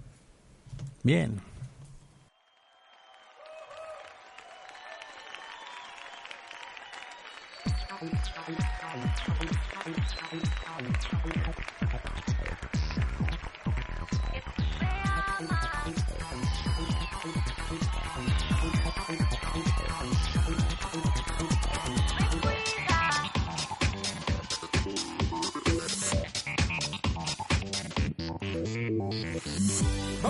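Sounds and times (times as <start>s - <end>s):
speech: 1.0s - 1.5s, 8.0s - 12.4s
song with steady beat and layered melodic instruments: 7.7s - 28.2s, 29.5s - 30.2s.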